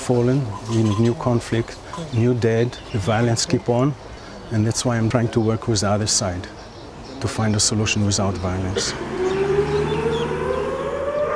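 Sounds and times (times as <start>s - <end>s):
speech: 0.1s - 9.3s
air-raid siren wailing for Memorial Day in Israel: 8.8s - 11.3s.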